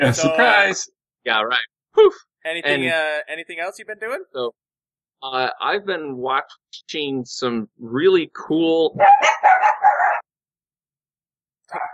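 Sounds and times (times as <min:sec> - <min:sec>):
speech: 0:00.0 - 0:04.6, 0:05.2 - 0:10.0, 0:11.7 - 0:11.9
dogs barking: 0:09.0 - 0:10.3.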